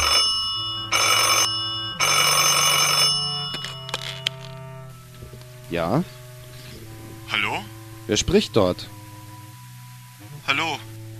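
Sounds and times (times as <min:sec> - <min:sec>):
telephone bell ringing: 0:00.0 - 0:04.9
speech: 0:05.7 - 0:06.2, 0:08.1 - 0:09.0.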